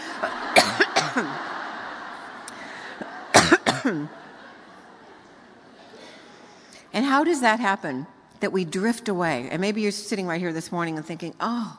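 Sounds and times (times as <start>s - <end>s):
laughter: 0.0s - 6.6s
speech: 0.2s - 1.3s, 3.8s - 4.3s, 7.0s - 11.7s
person coughing on a cough drop stuck in their throat: 0.2s - 1.4s, 3.3s - 4.1s.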